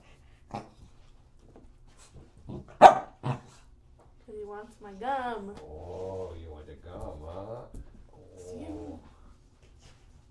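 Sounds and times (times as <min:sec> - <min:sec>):
dog barking: 0:02.8 - 0:03.4
speech: 0:04.6 - 0:08.8.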